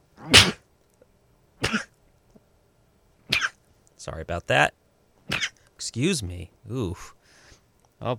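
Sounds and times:
loud explosive sneezes: 0.2 - 0.6, 1.6 - 1.9, 3.3 - 3.6, 5.3 - 5.6
speech: 4.0 - 4.8, 5.8 - 7.2, 8.0 - 8.1.

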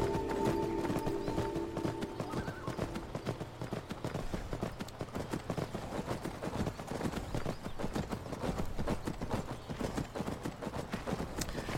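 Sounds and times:
horse hooves clip-clopping as a horse is ridden down steps: 0.0 - 11.7.

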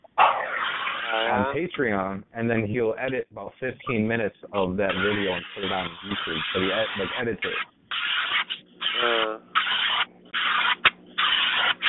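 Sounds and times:
speech: 1.1 - 7.7
pressure washer spraying a car: 4.8 - 11.8.

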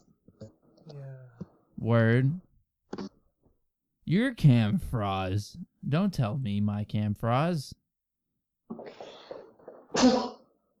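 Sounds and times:
speech: 1.8 - 3.1, 4.1 - 7.8, 10.0 - 10.3
loud sneeze after inhaled gasps: 8.8 - 10.6.

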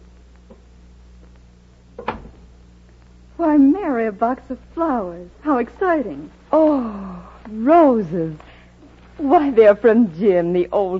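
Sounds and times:
steady low hum: 0.0 - 10.9
wooden door swinging open with a clunk: 2.0 - 2.5
speech: 3.5 - 8.5, 9.2 - 10.9.

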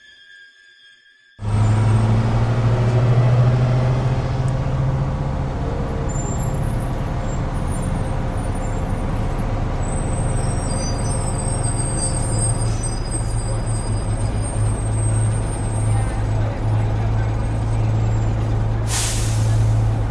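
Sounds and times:
bus brakes squealing: 0.0 - 20.0
bus engine drone: 1.4 - 20.0
bus door opening with air hiss: 18.9 - 19.8.

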